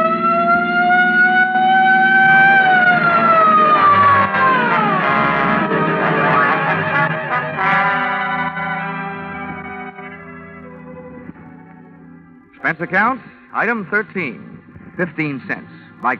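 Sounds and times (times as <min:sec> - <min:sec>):
police patrol car siren wailing: 0:00.0 - 0:12.4
speech: 0:12.8 - 0:16.1.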